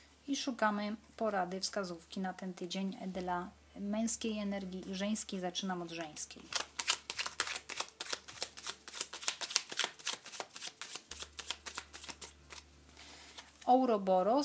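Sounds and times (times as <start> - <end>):
speech: 0.3 - 6.7, 13.7 - 14.4
tarot cards being shuffled: 6.5 - 12.7.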